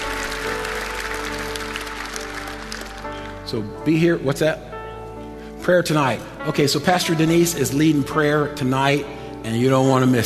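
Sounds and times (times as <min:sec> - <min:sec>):
crowd applauding: 0:00.0 - 0:03.5
speech: 0:03.5 - 0:04.7, 0:05.6 - 0:10.2.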